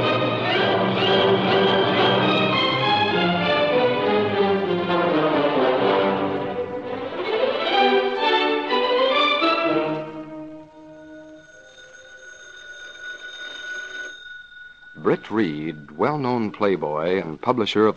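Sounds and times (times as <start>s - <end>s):
music: 0.0s - 12.2s, 14.9s - 17.4s
telephone bell ringing in a steady continuous trill: 10.6s - 16.0s
speech: 15.3s - 17.9s.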